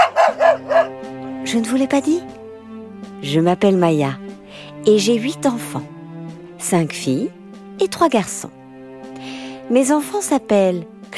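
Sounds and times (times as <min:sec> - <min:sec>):
dog barking: 0:00.0 - 0:01.0
speech: 0:01.5 - 0:02.4, 0:03.2 - 0:04.2, 0:04.8 - 0:05.9, 0:06.6 - 0:08.6, 0:09.2 - 0:11.0.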